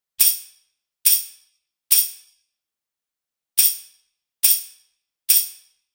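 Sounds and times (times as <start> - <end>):
tambourine: 0.2 - 2.6, 3.6 - 5.9.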